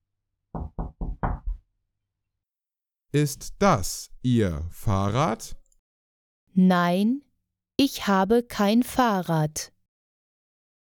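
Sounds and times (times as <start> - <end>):
knocking on a window: 0.5 - 1.7
speech: 3.1 - 5.6, 6.6 - 9.7.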